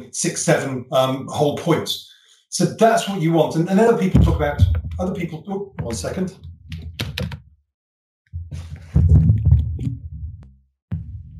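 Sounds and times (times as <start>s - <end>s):
speech: 0.1s - 7.3s
microphone knocked over and handled, thumping and clattering: 4.1s - 7.5s, 8.3s - 11.3s.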